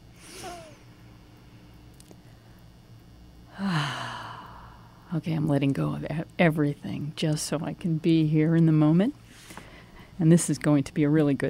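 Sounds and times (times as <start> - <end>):
slow deep breath in and long exhale: 3.5 - 5.0
speech: 5.1 - 9.2, 10.2 - 11.4.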